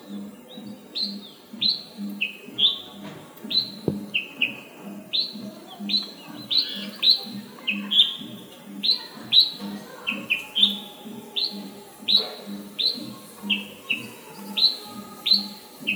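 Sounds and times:
Red-whiskered bulbul (Pycnonotus jocosus) calls: 0:00.0 - 0:15.9.

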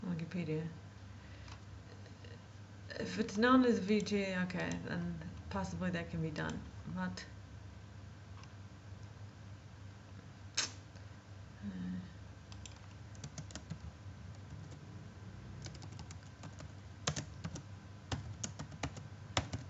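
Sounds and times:
low hum: 0:00.0 - 0:19.6
speech: 0:00.3 - 0:00.8, 0:02.9 - 0:07.4
typing on a Spanish-layout computer keyboard: 0:12.5 - 0:14.8, 0:15.6 - 0:19.6.

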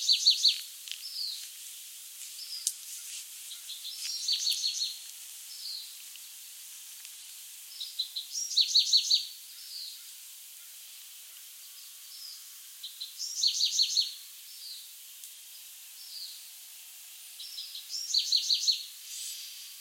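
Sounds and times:
Bewick's wren Thryomanes bewickii song phrases: 0:00.0 - 0:01.4, 0:03.5 - 0:06.0, 0:07.7 - 0:10.8, 0:11.6 - 0:14.9, 0:15.5 - 0:16.5, 0:17.4 - 0:19.7
quiet scattered notes: 0:00.0 - 0:01.5, 0:02.3 - 0:16.6, 0:17.2 - 0:19.7
steady background noise: 0:00.0 - 0:19.7.

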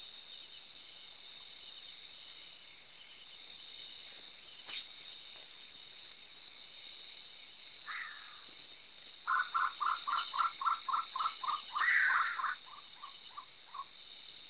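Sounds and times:
Sri Lanka frogmouth calling: 0:07.8 - 0:08.5, 0:09.2 - 0:14.0.

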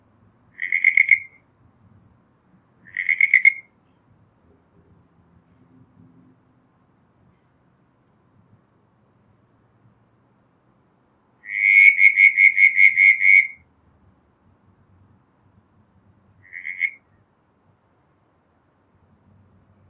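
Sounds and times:
Southern brown tree frog Litoria ewingii pulsed creaking call: 0:00.5 - 0:01.4, 0:02.8 - 0:03.8, 0:11.4 - 0:13.6, 0:16.4 - 0:17.2.

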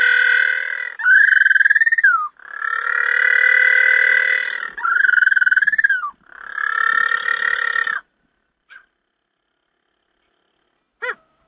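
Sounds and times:
little penguin call at St Kilda Breakwater: 0:00.0 - 0:08.1.

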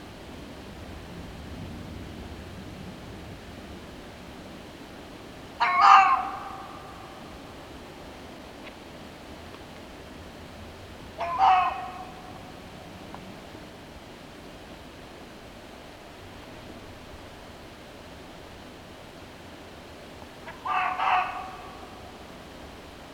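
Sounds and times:
steady broadband background hiss: 0:00.0 - 0:23.1
red fox (Vulpes vulpes) giving harsh barking calls: 0:05.6 - 0:07.3, 0:11.2 - 0:12.6, 0:20.4 - 0:22.2.

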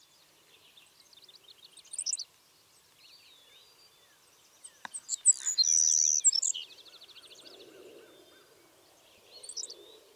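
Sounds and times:
Passerculus sandwichensis savannah sparrow singing: 0:00.6 - 0:02.2, 0:03.1 - 0:08.5, 0:09.1 - 0:10.0.

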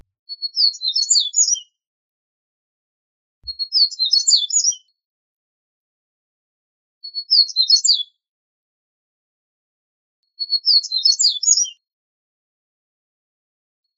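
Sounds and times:
Double-collared seedeater (Sporophila caerulescens) song: 0:00.3 - 0:01.8, 0:03.4 - 0:04.9, 0:07.0 - 0:08.2, 0:10.3 - 0:11.8.

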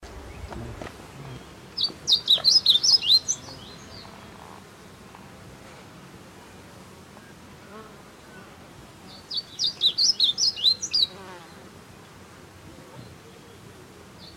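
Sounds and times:
blue seedeater Amaurospiza concolor twittering: 0:01.2 - 0:03.9, 0:09.3 - 0:11.2.

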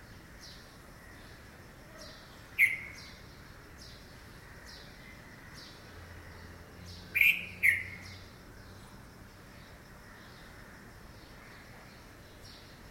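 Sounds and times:
red-vented bulbul Pycnonotus cafer calls: 0:02.0 - 0:04.0, 0:06.9 - 0:08.3.

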